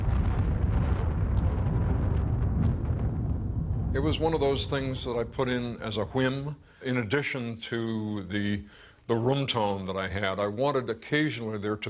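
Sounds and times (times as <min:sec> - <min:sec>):
deep continuous thunder rumble in film soundtrack: 0:00.0 - 0:06.8
speech: 0:03.9 - 0:11.8.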